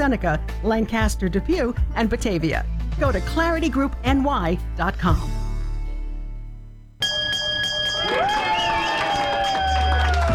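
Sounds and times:
speech: 0.0 - 5.4
victory bell ringing with bright sustained tone: 7.0 - 10.0
crowd cheering, shouting and whistling: 7.9 - 10.3.

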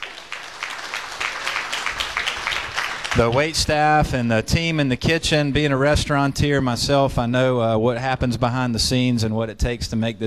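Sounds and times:
audience applause: 0.0 - 3.6
speech: 3.2 - 10.2.

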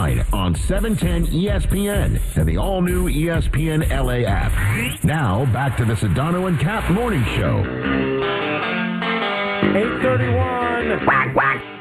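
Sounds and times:
speech: 0.2 - 8.4, 9.7 - 11.7
duck quacking: 11.0 - 11.7.

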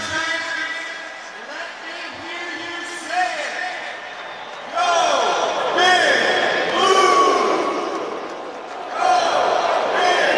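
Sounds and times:
large stadium crowd cheering as former players are introduced: 0.0 - 10.3.

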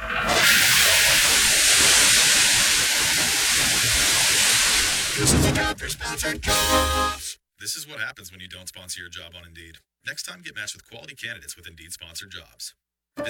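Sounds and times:
burst water main under heavy pressure hissing: 0.0 - 5.8
speech: 5.3 - 13.2.

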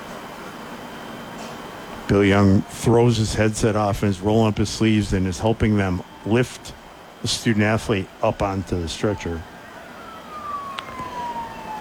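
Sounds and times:
ambulance siren: 0.0 - 11.7
steady noise: 0.0 - 11.7
speech: 2.1 - 9.5.

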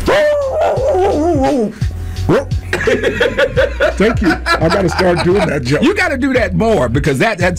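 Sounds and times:
person imitating dog barks: 0.0 - 1.7
speech: 1.4 - 7.5
laughter: 2.7 - 6.0.

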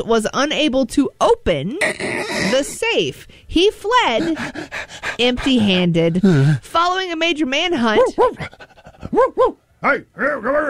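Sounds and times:
speech: 0.0 - 10.6
police dog panting: 3.9 - 6.7, 7.8 - 9.3
police dog vocalizing: 4.0 - 6.6, 7.8 - 9.6.

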